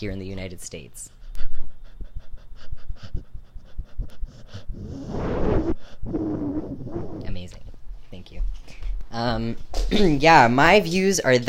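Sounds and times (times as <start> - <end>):
speech: 0.0 - 1.2, 6.0 - 11.4
dog panting: 1.1 - 7.4.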